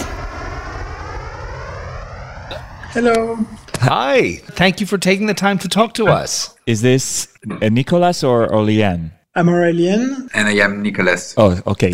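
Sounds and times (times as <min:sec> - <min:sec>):
airplane engine roaring with a rising whine: 0:00.0 - 0:04.5
speech: 0:02.5 - 0:11.9.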